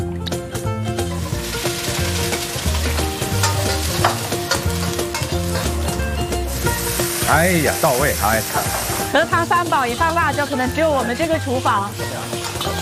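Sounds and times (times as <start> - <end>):
cold oil sizzling in a hot wok: 0.6 - 12.7
speech: 7.3 - 12.4.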